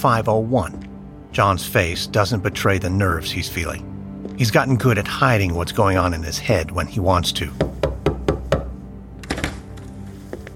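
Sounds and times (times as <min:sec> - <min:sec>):
speech: 0:00.0 - 0:08.0
firm knocks on a hotel room door: 0:07.6 - 0:08.8
shuffling: 0:09.8 - 0:10.5.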